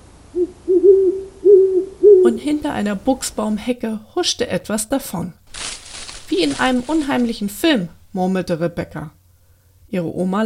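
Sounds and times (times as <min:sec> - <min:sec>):
owl hooting in low wavering calls: 0:00.3 - 0:02.4
speech: 0:02.4 - 0:05.4, 0:06.3 - 0:09.2, 0:09.9 - 0:10.4.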